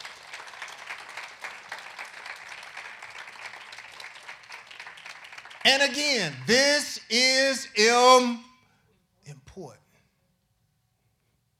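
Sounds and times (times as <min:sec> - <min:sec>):
audience applause: 0:00.0 - 0:07.0
speech: 0:05.6 - 0:08.5, 0:09.6 - 0:09.8.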